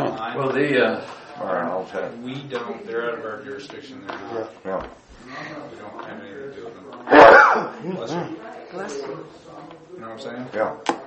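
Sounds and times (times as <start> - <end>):
people talking quietly in conversation: 0.0 - 11.0
speech: 0.2 - 11.0
loud sneeze: 7.1 - 7.8.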